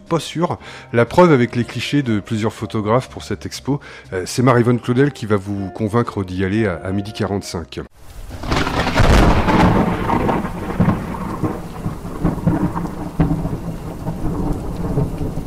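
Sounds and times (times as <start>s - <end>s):
speech: 0.1s - 7.9s
steady rain hissing: 8.0s - 15.4s
loud crack of thunder rolling into low rumble: 8.2s - 15.4s.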